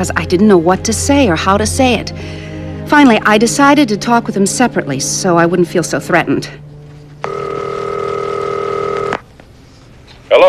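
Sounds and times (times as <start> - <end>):
speech: 0.0 - 6.6
steady electronic telephone tone as a call is placed: 7.2 - 9.2.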